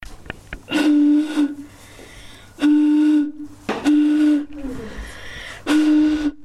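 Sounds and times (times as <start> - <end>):
blowing into a bottle: 0.7 - 1.7, 2.6 - 5.0, 5.7 - 6.4.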